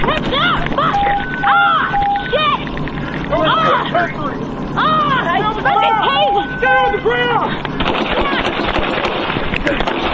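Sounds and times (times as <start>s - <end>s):
voices: 0.0s - 10.1s
rapid gunfire: 7.8s - 10.1s.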